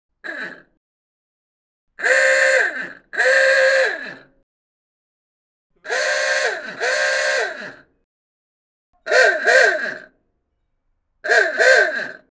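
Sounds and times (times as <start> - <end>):
klaxon horn ooogah: 2.0 - 4.2, 5.8 - 7.9, 9.1 - 10.1, 11.3 - 12.2.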